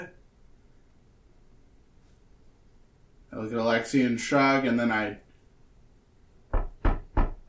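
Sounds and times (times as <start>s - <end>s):
speech: 3.5s - 5.3s
firm knocking on a door: 6.5s - 7.4s.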